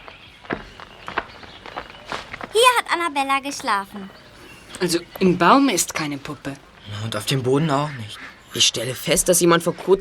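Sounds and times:
footsteps of people walking on the ground: 0.0s - 6.9s
speech: 2.6s - 4.2s, 4.8s - 9.9s.

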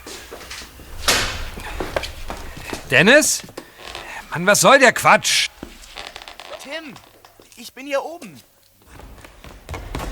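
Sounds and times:
shuffling movement: 0.0s - 9.4s
old rickety entrance door scraping open: 0.4s - 4.6s, 5.4s - 7.3s
speech: 2.9s - 3.5s, 4.3s - 5.5s, 6.8s - 7.1s, 7.7s - 8.5s.

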